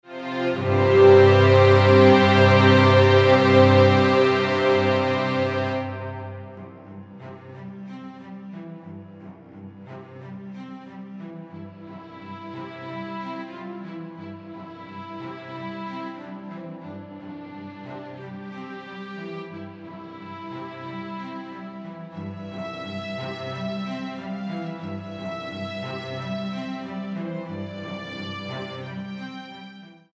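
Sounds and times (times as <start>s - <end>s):
piano and string quintet: 0.0s - 30.1s.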